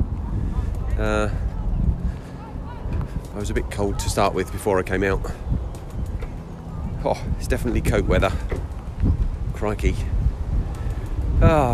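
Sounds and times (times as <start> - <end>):
gusty wind buffeting the microphone outdoors on a cold day: 0.0 - 11.7
speech: 1.0 - 1.5, 3.4 - 5.5, 7.0 - 8.7, 9.6 - 10.1, 11.4 - 11.7.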